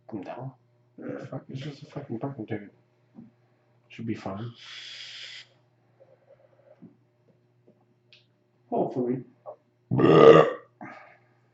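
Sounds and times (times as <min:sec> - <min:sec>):
speech: 0:00.1 - 0:03.3, 0:03.9 - 0:05.2, 0:08.8 - 0:10.5
loud burp: 0:01.0 - 0:01.4, 0:09.9 - 0:10.7.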